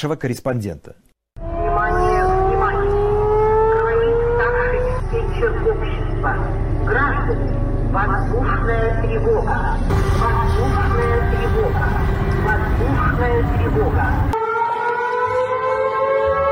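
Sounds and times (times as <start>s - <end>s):
speech: 0.0s - 1.1s, 6.2s - 11.5s
street noise: 1.4s - 15.3s
air raid siren wailing: 1.4s - 16.5s.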